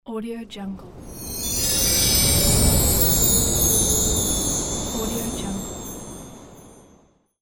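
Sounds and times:
Christmas whoosh: 0.8 - 6.7.

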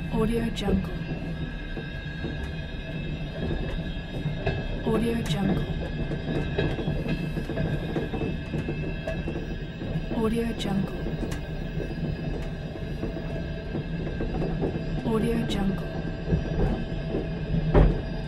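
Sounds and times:
train wheels knocking heard from inside: 0.2 - 18.2.

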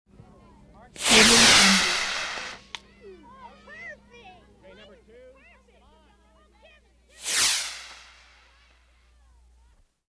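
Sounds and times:
bottle rocket set off and launched: 1.0 - 2.7, 7.2 - 8.6.

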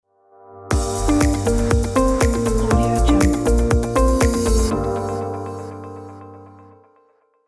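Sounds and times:
modern corporate logo jingle: 0.8 - 5.9.

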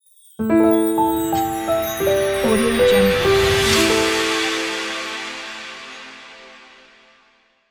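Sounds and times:
dreamy logo jingle: 0.8 - 4.5.

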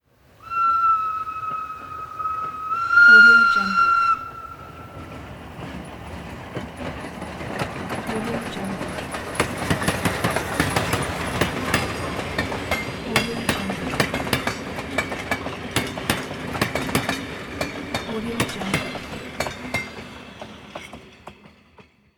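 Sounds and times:
steam locomotive passing by: 0.2 - 22.1
steam locomotive train whistle: 0.4 - 5.2.

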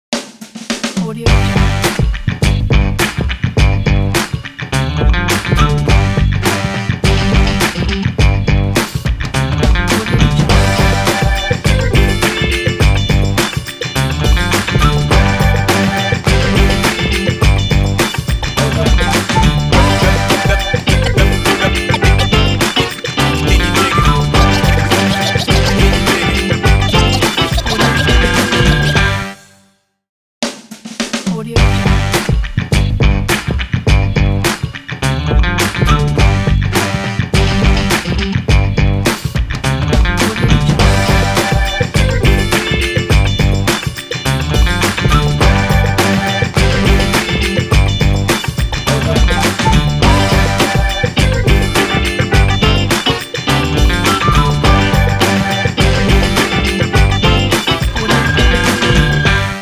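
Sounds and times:
hip hop funk beat logo: 0.1 - 29.3, 30.9 - 59.6.

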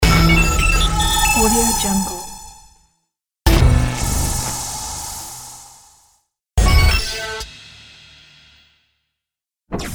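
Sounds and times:
robot battle sound effects: 0.0 - 2.8, 3.5 - 7.4.

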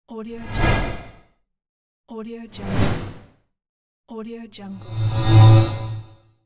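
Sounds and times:
transition whooshes: 0.4 - 1.2, 2.6 - 3.3, 4.8 - 6.1.

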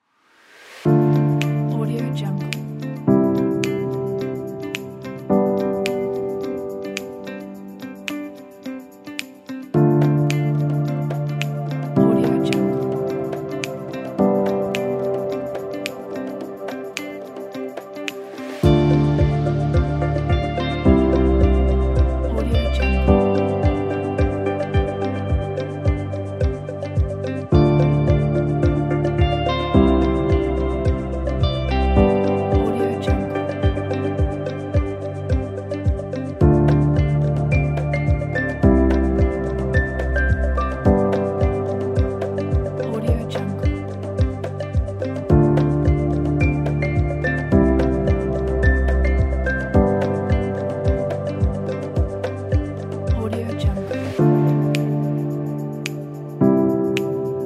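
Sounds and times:
ambient music: 0.4 - 57.4.

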